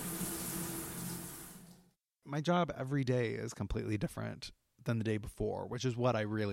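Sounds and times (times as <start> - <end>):
rain bar shower water running: 0.0 - 1.9
speech: 2.3 - 6.5.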